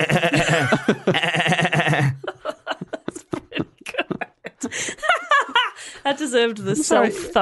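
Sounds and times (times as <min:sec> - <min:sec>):
speech: 0:00.0 - 0:01.2, 0:06.4 - 0:07.4
wavering bleat-like vocal sound: 0:00.0 - 0:02.2
laughter: 0:00.0 - 0:06.0.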